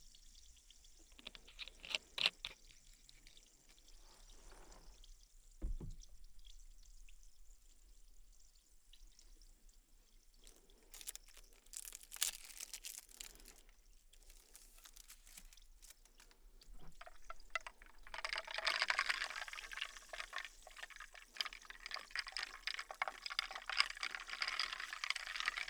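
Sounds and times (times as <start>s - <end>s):
splashing pours into a glass: 0.0s - 5.0s, 10.3s - 25.6s
ice cubes clinking and knocking inside a glass: 11.0s - 13.6s, 14.2s - 16.2s, 16.8s - 25.6s.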